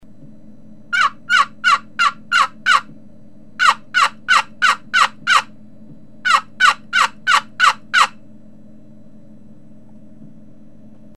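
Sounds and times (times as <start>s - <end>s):
a call: 0.9s - 2.9s, 3.6s - 5.5s, 6.2s - 8.2s.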